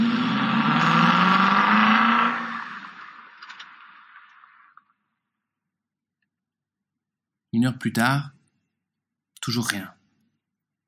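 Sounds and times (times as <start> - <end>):
car starting and pulling away: 0.0 - 4.7
speech: 7.6 - 8.3, 9.5 - 10.0.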